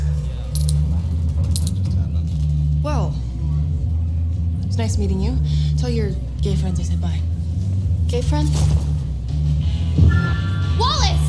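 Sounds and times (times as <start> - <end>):
steady low engine rumble: 0.0 - 11.2
bright metallic jingling: 0.5 - 0.9, 1.5 - 1.9
speech: 4.8 - 7.4, 8.1 - 8.9.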